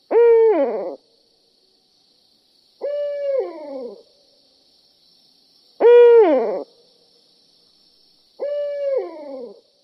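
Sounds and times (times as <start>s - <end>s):
owl hooting: 0.1s - 1.0s, 2.8s - 4.0s, 5.8s - 6.7s, 8.4s - 9.6s.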